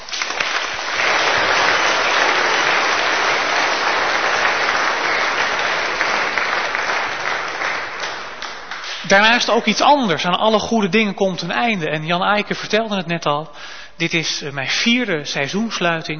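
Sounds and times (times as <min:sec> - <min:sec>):
crowd applauding: 0:00.0 - 0:09.7
speech: 0:09.1 - 0:16.1.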